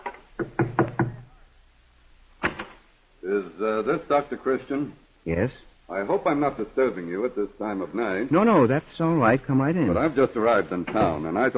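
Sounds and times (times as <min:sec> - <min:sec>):
firm knocking on a wooden door: 0:00.4 - 0:01.3
speech: 0:03.3 - 0:11.5.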